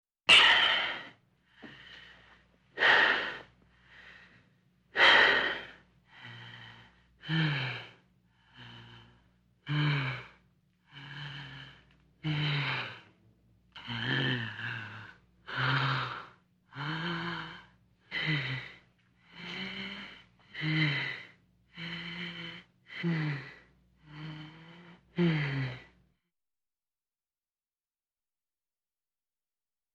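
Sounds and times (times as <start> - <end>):
woman out of breath panting: 0.3 - 4.4, 5.0 - 13.0, 13.8 - 25.9.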